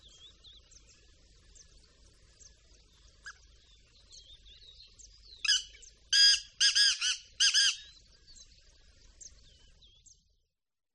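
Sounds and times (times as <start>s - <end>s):
faint chirps from other birds: 0.0s - 10.4s
black francolin giving harsh creaking calls: 5.5s - 7.9s.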